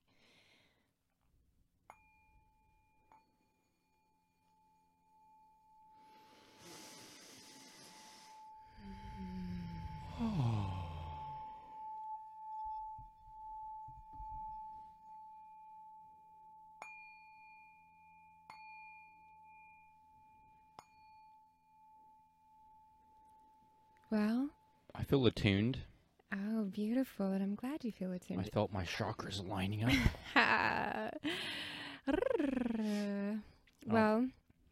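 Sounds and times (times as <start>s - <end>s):
deep breaths: 0.0s - 1.0s, 6.0s - 11.8s, 31.2s - 32.1s
singing bowl ringing with a long sustained pure tone: 1.9s - 6.6s, 7.6s - 24.9s
speech: 24.1s - 31.5s, 32.8s - 34.4s.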